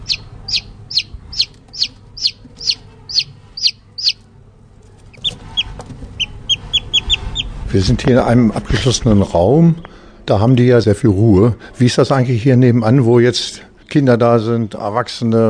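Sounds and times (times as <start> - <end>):
newly hatched chicks peeping in an enclosure: 0.0 - 4.3, 4.9 - 8.2
low hum: 0.0 - 15.4
speech: 7.8 - 15.4.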